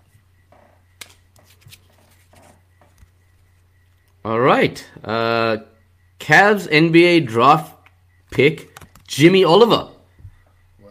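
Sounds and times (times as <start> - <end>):
low steady hum: 0.0 - 10.8
basketball trading cards rustling and flicking as they are handled: 1.0 - 4.2
speech: 4.2 - 5.7, 6.3 - 7.7, 8.3 - 9.9.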